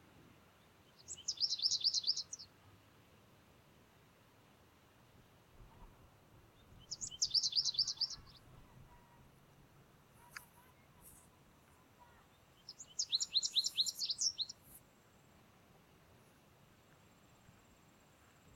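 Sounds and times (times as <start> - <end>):
American Goldfinch Carduelis tristis twittering calls: 1.0 - 2.5, 6.7 - 8.5, 12.5 - 14.6.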